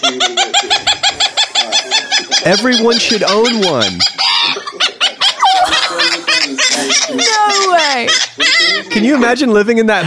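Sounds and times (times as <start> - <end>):
speech: 0.0 - 0.9, 2.4 - 4.3, 9.0 - 10.0
kookaburra laughing call: 0.0 - 9.2.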